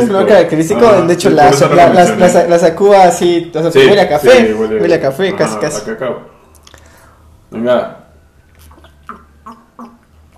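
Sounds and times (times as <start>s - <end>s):
speech: 0.0s - 6.3s, 7.5s - 8.0s
person gulping malt beer: 8.5s - 10.3s.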